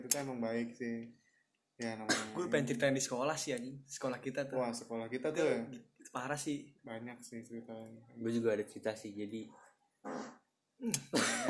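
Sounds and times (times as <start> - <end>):
speech: 0.1 - 1.2, 1.8 - 11.4
fart: 10.0 - 11.1.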